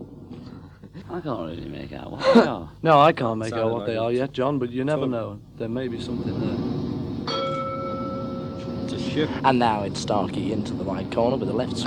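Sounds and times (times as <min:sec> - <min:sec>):
constant noisy background: 0:00.0 - 0:11.8
speech: 0:01.1 - 0:06.7, 0:09.2 - 0:11.8
boxing ring bell clanging: 0:07.3 - 0:09.0.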